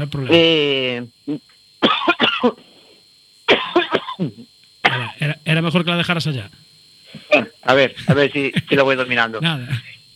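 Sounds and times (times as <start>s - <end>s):
speech: 0.0s - 2.6s, 5.7s - 6.6s, 7.3s - 9.8s
harsh coughing: 1.8s - 2.7s, 3.5s - 5.2s, 7.1s - 8.8s.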